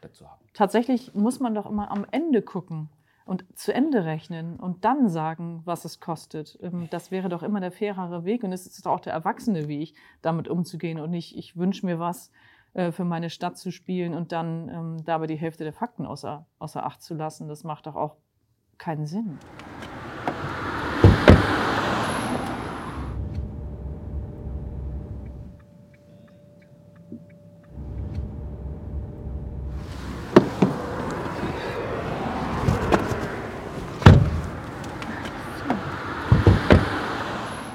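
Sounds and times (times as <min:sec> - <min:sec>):
speech: 0:00.1 - 0:18.2, 0:18.8 - 0:19.8
outdoor traffic noise at a bridge over a canal: 0:19.3 - 0:37.7
car doors thudding shut at a bridge over a canal: 0:19.4 - 0:25.5, 0:27.8 - 0:37.7
faint steady hum: 0:23.0 - 0:30.8.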